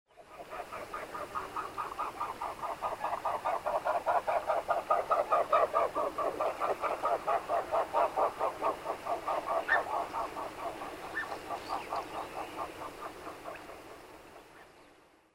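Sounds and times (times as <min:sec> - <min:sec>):
Black-necked swan Cygnus melancoryphus calling: 0:00.2 - 0:13.9.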